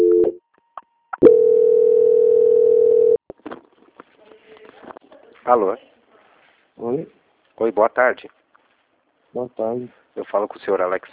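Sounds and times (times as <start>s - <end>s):
telephone line tone during a bank call transfer: 0.0s - 0.4s, 1.2s - 3.2s
speech: 5.5s - 6.0s, 6.8s - 8.4s, 9.3s - 11.1s.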